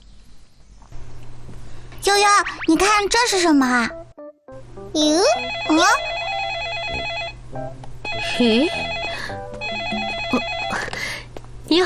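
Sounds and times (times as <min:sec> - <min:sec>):
speech: 0:02.0 - 0:04.0, 0:04.9 - 0:06.1, 0:07.5 - 0:09.0
telephone ringing with an electronic ringtone: 0:05.3 - 0:07.4, 0:08.1 - 0:10.9.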